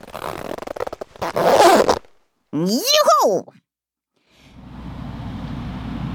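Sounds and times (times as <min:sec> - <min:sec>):
suitcase zipper pulled shut: 0:00.0 - 0:02.0
speech: 0:02.5 - 0:03.6.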